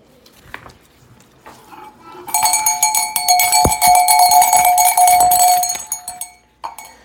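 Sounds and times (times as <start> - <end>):
faint clinks: 2.3 - 7.0
small bells tinkling: 2.3 - 7.0.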